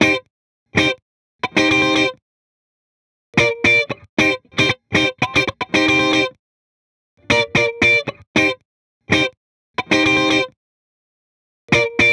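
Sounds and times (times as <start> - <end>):
guitar strumming with no effects: 0.8 - 2.1, 3.4 - 6.3, 7.2 - 10.5, 11.7 - 12.1.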